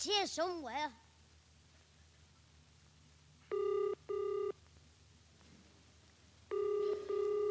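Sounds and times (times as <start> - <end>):
speech: 0.0 - 1.0
faint hum: 0.0 - 7.4
telephone ringing tone heard down the line: 3.5 - 4.6, 6.5 - 7.4.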